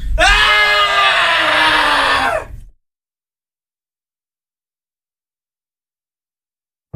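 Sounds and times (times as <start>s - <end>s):
loud harsh scream sliding downward in pitch: 0.0s - 2.7s.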